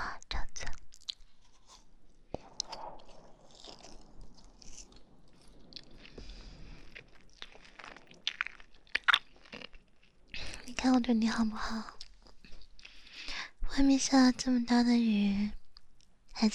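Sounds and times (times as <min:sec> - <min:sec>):
crunchy biting and chewing of food: 0:00.9 - 0:10.6
speech: 0:10.8 - 0:12.0, 0:13.8 - 0:15.6.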